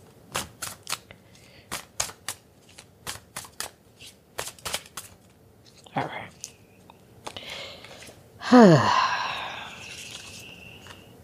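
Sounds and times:
deck of cards being shuffled and handled: 0:00.3 - 0:06.6, 0:09.8 - 0:11.1
speech: 0:06.0 - 0:06.2, 0:08.5 - 0:09.0.

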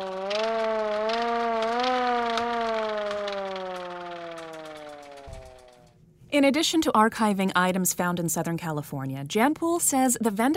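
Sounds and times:
East German hand-cranked air raid siren wailing: 0:00.0 - 0:06.0
faint mechanical rattle of the siren: 0:00.0 - 0:06.2
speech: 0:06.4 - 0:10.5.

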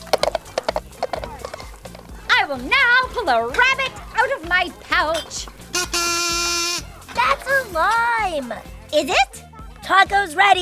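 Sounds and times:
donkey hooves clopping: 0:00.0 - 0:05.8
speech: 0:02.5 - 0:05.6, 0:07.5 - 0:10.6.

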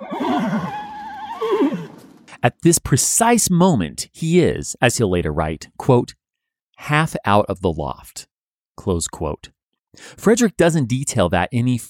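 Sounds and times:
horse neighing: 0:00.0 - 0:02.1
speech: 0:02.4 - 0:06.2, 0:06.8 - 0:11.8.

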